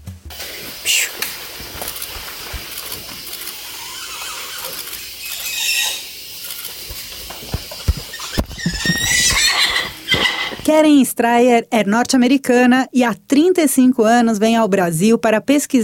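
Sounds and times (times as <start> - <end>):
soft rustling forest background: 0.2 - 10.7
muriqui monkeys squealing in a forest in Brazil: 3.6 - 6.2, 8.1 - 10.6
speech: 10.7 - 15.8.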